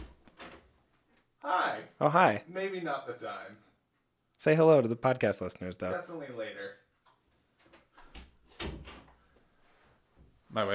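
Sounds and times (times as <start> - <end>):
home studio door being opened with creaks and rattles: 0.0 - 0.8, 7.6 - 9.2
speech: 1.5 - 3.7, 4.4 - 6.8, 10.6 - 10.7.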